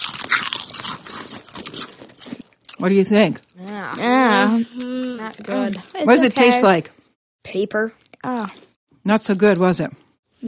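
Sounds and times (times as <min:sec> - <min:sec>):
several people crunching chips during a taste test: 0:00.0 - 0:06.4
speech: 0:02.8 - 0:10.4.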